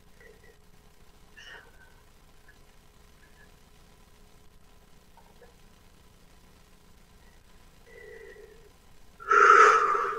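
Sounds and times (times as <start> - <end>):
deep drawn-out wheezy breath: 7.9 - 10.1.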